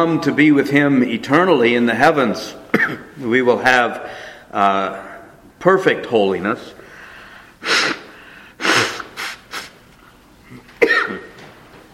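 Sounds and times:
speech: 0:00.0 - 0:06.8
person coughing from a tickle in the throat: 0:02.7 - 0:03.2, 0:10.5 - 0:11.4.

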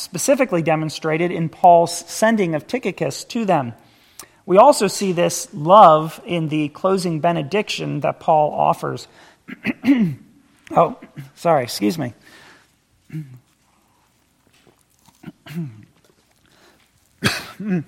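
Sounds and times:
speech: 0:00.0 - 0:03.8, 0:04.5 - 0:12.4, 0:13.1 - 0:13.4, 0:15.5 - 0:15.8, 0:17.2 - 0:17.8
speaker clearing throat during a talk: 0:09.5 - 0:11.4, 0:13.0 - 0:13.6, 0:15.2 - 0:16.1, 0:17.2 - 0:17.8
speaker coughing during a talk: 0:09.5 - 0:11.4, 0:13.1 - 0:13.5, 0:15.2 - 0:16.0, 0:17.2 - 0:17.8.

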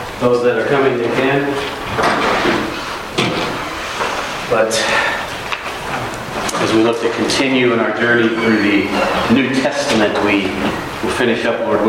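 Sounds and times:
roomy noise: 0:00.0 - 0:11.8
speech: 0:00.2 - 0:02.7, 0:04.5 - 0:05.2, 0:06.6 - 0:11.8
door shutting with scraping swing and solid clunk: 0:01.6 - 0:04.2, 0:05.6 - 0:11.2.

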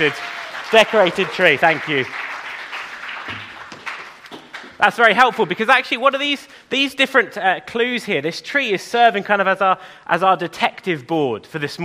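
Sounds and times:
speech: 0:00.0 - 0:02.2, 0:04.8 - 0:11.8
audience applause for children: 0:00.0 - 0:04.8.

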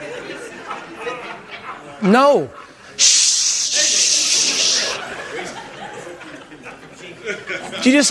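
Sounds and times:
murmuring: 0:00.0 - 0:07.8
speech: 0:02.0 - 0:03.9, 0:07.3 - 0:08.0
aerosol can spraying into the air: 0:03.0 - 0:05.0
laughter: 0:03.6 - 0:08.0.

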